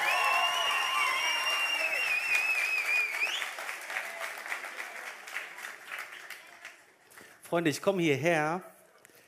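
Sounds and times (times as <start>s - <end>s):
shrill whistles: 0.0s - 3.6s
crowd applause: 0.0s - 7.3s
speech: 7.5s - 8.7s.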